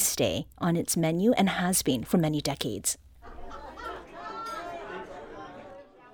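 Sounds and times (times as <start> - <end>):
speech: 0.2 - 3.0
murmur of many patrons chatting in a fried chicken restaurant: 3.2 - 6.1
patrons laughing in a restaurant: 3.2 - 6.1.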